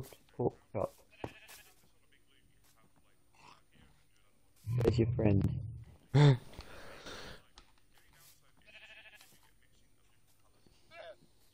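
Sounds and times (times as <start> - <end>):
speech: 0.0 - 1.0, 4.9 - 6.4
blue sheep bleating: 1.0 - 1.9, 8.6 - 9.4.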